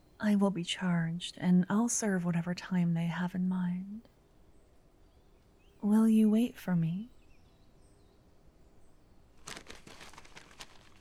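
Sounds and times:
speech: 0:00.2 - 0:04.1, 0:05.8 - 0:07.2
paper crinkling as a letter is unfolded: 0:09.4 - 0:10.9.

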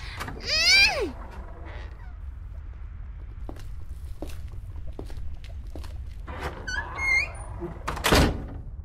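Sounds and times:
heavy door creaking open with hinge squeal: 0:00.0 - 0:02.5, 0:06.2 - 0:08.7.

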